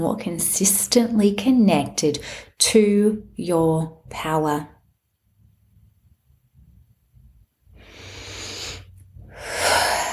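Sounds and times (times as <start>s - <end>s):
speech: 0.0s - 4.8s
deep breath in and out: 7.7s - 10.1s.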